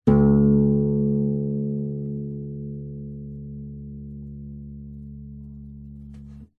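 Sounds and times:
nylon guitar lower string picked and stopped with finger: 0.1 - 6.5.

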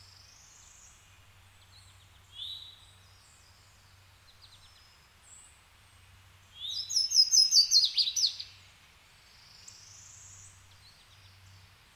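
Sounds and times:
woodland ambience with birds close: 0.0 - 11.9
bird song of quick high chirps and slurred whistled notes: 6.6 - 8.5.

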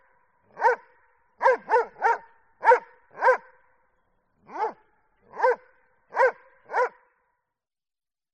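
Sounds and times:
Doberman giving loud gruff barks: 0.5 - 3.6, 4.4 - 7.1.

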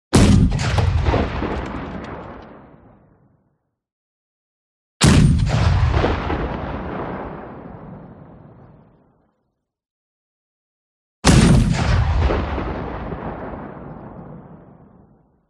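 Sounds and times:
heavy artillery fire: 0.1 - 3.2, 5.0 - 8.9, 11.2 - 15.0.

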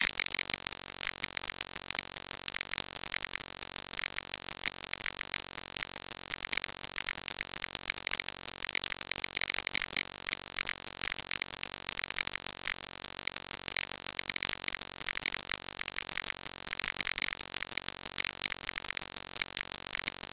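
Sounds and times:
voltage crackle glitch loop: 0.0 - 20.3.

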